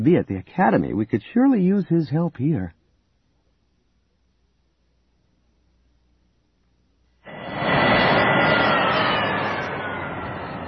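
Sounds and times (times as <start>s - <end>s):
speech: 0.0s - 2.8s
E-wing starfighter jet engines roaring and winding down: 7.2s - 10.6s.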